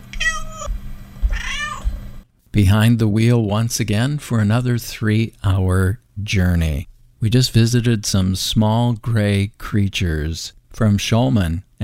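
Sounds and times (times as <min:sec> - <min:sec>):
cat meowing: 0:00.1 - 0:00.7, 0:01.3 - 0:01.9
speech: 0:02.6 - 0:11.8.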